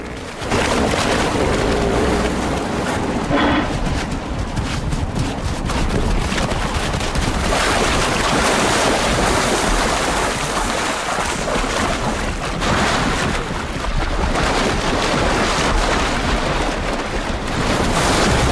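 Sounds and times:
low rumbling thuds of stampeding hippos: 0:00.0 - 0:06.7
hippos stampeding and crashing into a river: 0:00.0 - 0:18.5.

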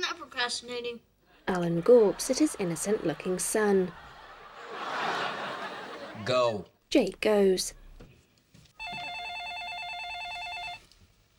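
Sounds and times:
speech: 0:00.4 - 0:04.1, 0:06.2 - 0:07.8
laughter: 0:01.5 - 0:06.6
telephone ringing: 0:08.8 - 0:10.9.

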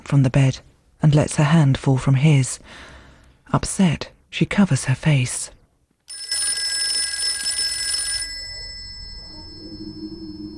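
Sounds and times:
low quiet noise: 0:00.0 - 0:10.5
speech: 0:00.1 - 0:05.6
telephone bell ringing: 0:06.1 - 0:10.5.

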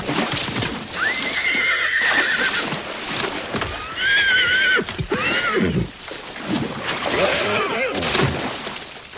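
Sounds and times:
horse hooves stamping and scuffling: 0:00.0 - 0:09.1
horse whinnying shrilly while rearing at the edge of a pond: 0:01.0 - 0:02.7, 0:03.6 - 0:05.9.

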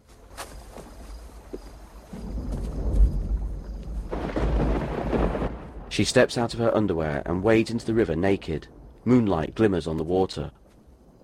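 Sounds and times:
rolling thunder during a night lightning storm by a river: 0:02.1 - 0:09.0
speech: 0:06.0 - 0:10.6.

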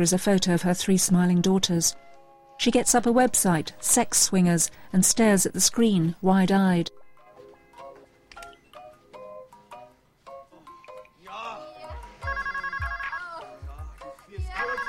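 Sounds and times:
speech: 0:00.0 - 0:07.0
telephone ringing with an electronic ringtone: 0:12.2 - 0:13.6, 0:14.5 - 0:14.8.

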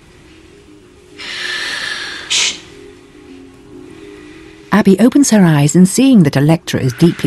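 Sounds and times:
exaggerated noisy breathing mocking a meditation session: 0:00.0 - 0:04.8
speech: 0:04.8 - 0:07.2.

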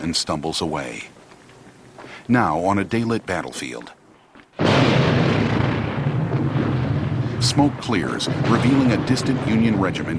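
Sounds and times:
speech: 0:00.0 - 0:01.2, 0:02.3 - 0:04.0, 0:07.4 - 0:10.1
explosions on an American Civil War battlefield: 0:04.6 - 0:10.1.

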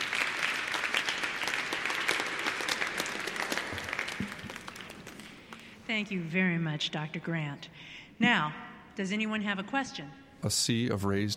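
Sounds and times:
audience applause at a stage talk: 0:00.0 - 0:05.8
speech: 0:05.9 - 0:11.3.

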